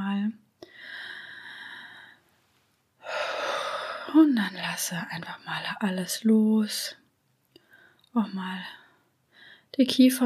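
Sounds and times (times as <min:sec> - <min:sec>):
deep breaths drawn down into the belly: 0:00.6 - 0:04.1, 0:07.6 - 0:08.1, 0:08.8 - 0:09.8
speech: 0:04.1 - 0:07.0, 0:08.2 - 0:08.8, 0:09.8 - 0:10.2.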